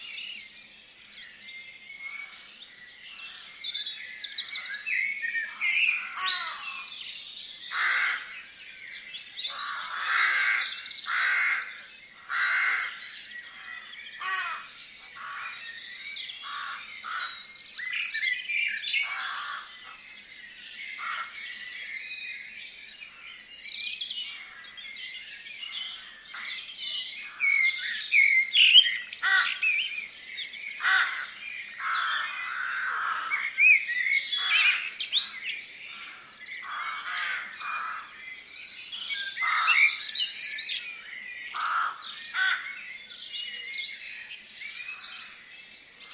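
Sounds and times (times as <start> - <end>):
blackbirds in farmland: 0.0 - 46.1
crows in farmland: 4.5 - 7.0, 7.7 - 8.4, 9.5 - 15.7, 16.4 - 17.5, 18.6 - 20.0, 21.0 - 21.5, 27.3 - 38.2, 39.2 - 40.9, 41.5 - 42.8.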